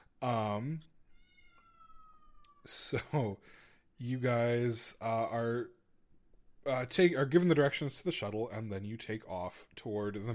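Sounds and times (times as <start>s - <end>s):
speech: 0.2s - 1.0s, 2.6s - 5.8s, 6.6s - 10.3s
cat meowing in the background: 1.1s - 2.7s.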